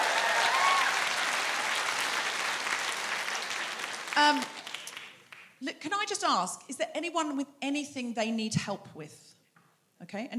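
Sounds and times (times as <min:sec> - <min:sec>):
live audience applause: 0:00.0 - 0:05.4
speech: 0:04.2 - 0:04.6, 0:05.6 - 0:09.3, 0:10.0 - 0:10.3.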